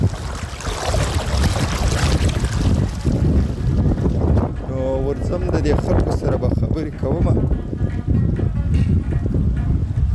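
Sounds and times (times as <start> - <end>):
clear water flowing in a stream: 0.0 - 4.5
gusts of wind buffeting the microphone: 0.0 - 10.1
speech: 5.6 - 7.8.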